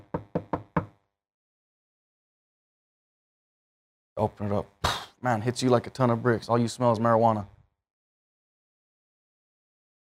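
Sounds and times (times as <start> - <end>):
knocking on a wooden door: 0.0 - 1.0
speech: 4.2 - 7.5.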